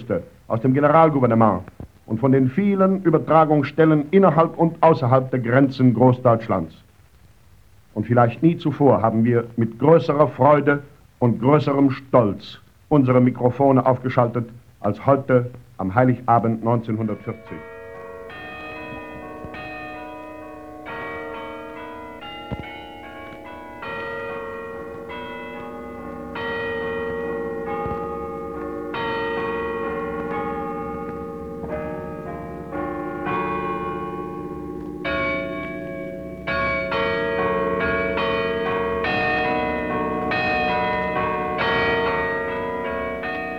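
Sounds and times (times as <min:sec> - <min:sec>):
speech: 0:00.0 - 0:06.8, 0:08.0 - 0:17.7
carillon bells playing a melody from the tower of the old Garrison Church in Potsdam, Germany: 0:16.6 - 0:43.5.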